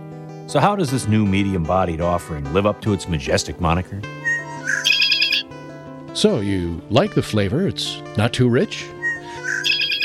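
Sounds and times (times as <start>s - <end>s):
speech: 0.5s - 5.0s, 6.2s - 9.0s
red-winged blackbird buzzing trill: 4.2s - 5.5s, 9.0s - 10.0s.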